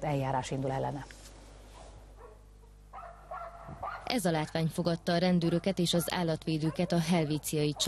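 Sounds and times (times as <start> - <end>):
speech: 0.0 - 1.2, 3.7 - 7.8
small dog yips: 3.0 - 4.1
small dogs in cramped rabbit cages barking and yelping: 3.0 - 4.1, 5.4 - 7.8.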